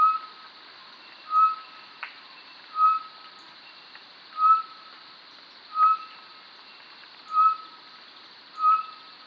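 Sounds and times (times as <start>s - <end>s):
Short-tailed batis Batis mixta piping whistles: 0.0s - 0.3s, 1.2s - 3.2s, 4.3s - 4.8s, 5.7s - 6.3s, 7.3s - 7.8s, 8.6s - 9.1s.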